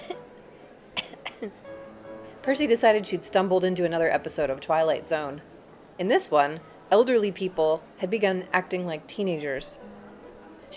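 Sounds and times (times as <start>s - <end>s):
person coughing: 1.0s - 1.6s
speech: 1.4s - 1.7s, 2.4s - 9.9s.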